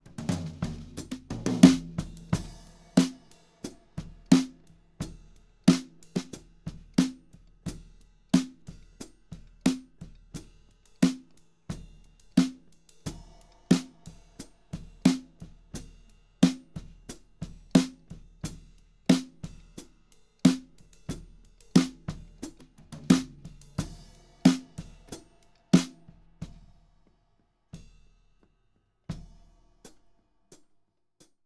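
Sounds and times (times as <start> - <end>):
snare drum: 0.0 - 10.4, 12.4 - 26.7.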